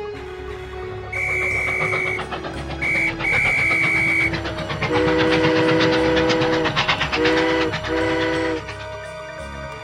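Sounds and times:
steam train rumbling and clattering along the rails: 0.0s - 9.8s
steam train whistle blowing: 1.1s - 8.8s.

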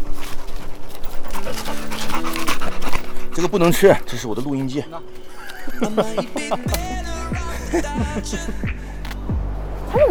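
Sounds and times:
dog panting: 0.0s - 6.0s
outdoor noise: 0.0s - 10.1s
dog whimpering faintly: 1.0s - 4.2s
speech: 3.4s - 9.0s
laughter: 5.2s - 9.1s.

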